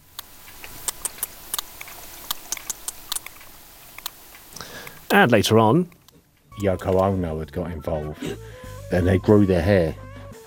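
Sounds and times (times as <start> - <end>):
sperm whale clicks: 0.0 - 7.2
faint steady hiss: 0.0 - 10.4
speech: 5.1 - 6.0, 6.6 - 10.4.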